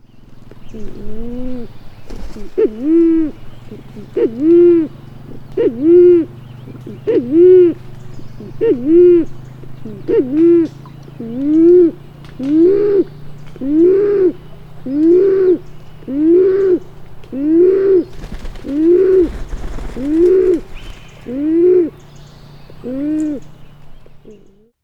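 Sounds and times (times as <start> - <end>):
band-tailed pigeon giving slow deep hollow coos: 0.7 - 7.8, 8.4 - 22.1, 22.8 - 23.5.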